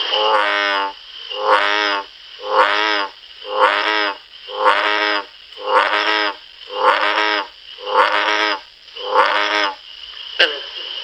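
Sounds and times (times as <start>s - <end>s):
bullfrog croaking: 0.2s - 9.8s, 10.4s - 10.7s.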